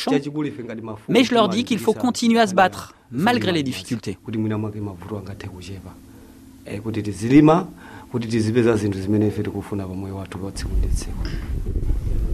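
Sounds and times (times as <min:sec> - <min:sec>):
speech: 0:00.0 - 0:11.9
strong wind buffeting the microphone on an exposed hilltop: 0:10.6 - 0:12.3.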